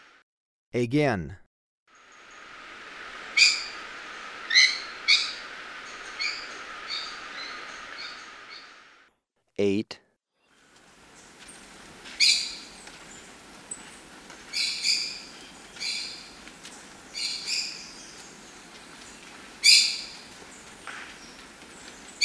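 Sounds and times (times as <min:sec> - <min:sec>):
speech: 0:00.7 - 0:01.4, 0:09.6 - 0:10.0
quiet steady background hiss: 0:01.9 - 0:09.0, 0:10.6 - 0:22.2
maroon-tailed parakeet harsh screechy calls in Ecuador: 0:03.3 - 0:03.8, 0:04.4 - 0:05.5, 0:06.1 - 0:08.8, 0:12.2 - 0:12.7, 0:14.5 - 0:16.3, 0:19.6 - 0:20.2.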